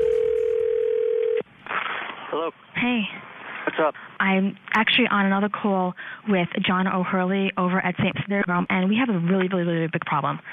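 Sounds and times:
telephone dial tone: 0:00.0 - 0:01.4
speech: 0:02.4 - 0:10.5.

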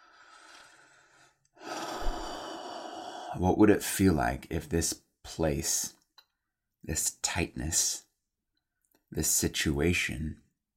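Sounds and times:
deep breathing during a guided breathing exercise: 0:00.0 - 0:03.4
speech: 0:03.3 - 0:06.0, 0:06.8 - 0:08.1, 0:09.1 - 0:10.4.

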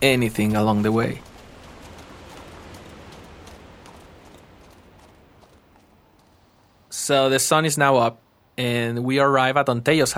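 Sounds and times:
speech: 0:00.0 - 0:01.3, 0:07.1 - 0:10.1
hooves of walking horses clip-clopping: 0:00.0 - 0:07.0
hissing noise: 0:00.0 - 0:10.1.

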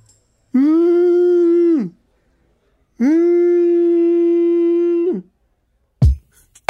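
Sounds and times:
voice imitating a whale call: 0:00.6 - 0:02.0, 0:03.0 - 0:05.4.

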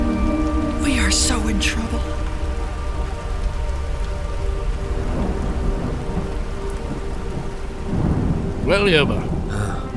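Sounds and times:
steady heavy rain pouring down: 0:00.0 - 0:09.9
speech: 0:01.5 - 0:02.3, 0:08.7 - 0:09.4
deep continuous low rumble of thunder: 0:02.1 - 0:09.9.

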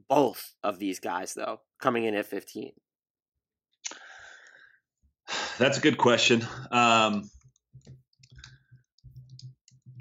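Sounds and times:
speech: 0:00.1 - 0:02.8, 0:05.6 - 0:08.0
rapid furious keyboard typing: 0:07.0 - 0:09.9.

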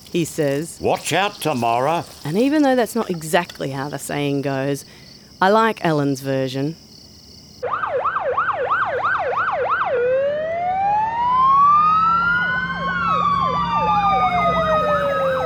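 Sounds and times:
speech: 0:00.1 - 0:06.8
fire truck sirens in the street: 0:07.6 - 0:15.4.

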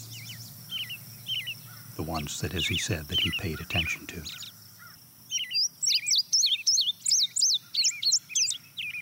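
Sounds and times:
faint bird chirps: 0:00.0 - 0:08.9
field sparrow song trill: 0:00.0 - 0:08.9
speech: 0:02.0 - 0:04.6.

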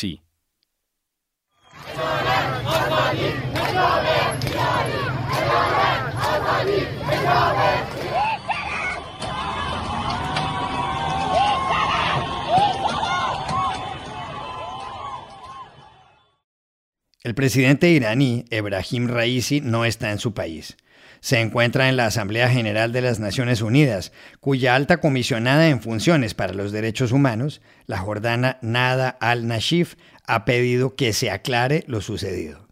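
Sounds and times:
speech: 0:00.0 - 0:00.2, 0:01.8 - 0:05.8, 0:17.2 - 0:32.6
large crowd of protesters chanting slogans in Iran: 0:01.7 - 0:16.0.

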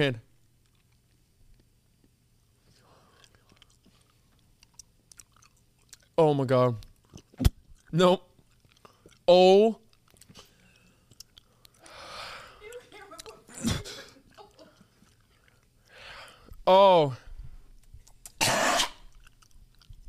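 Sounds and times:
speech: 0:00.0 - 0:00.2, 0:06.2 - 0:08.3, 0:09.3 - 0:09.8, 0:16.7 - 0:17.2
wet chewing of a gummy bear: 0:00.6 - 0:01.7, 0:03.0 - 0:06.2, 0:06.8 - 0:12.0, 0:14.2 - 0:16.5, 0:17.8 - 0:20.0
rough coughing gasp: 0:13.5 - 0:14.2, 0:18.4 - 0:19.0.

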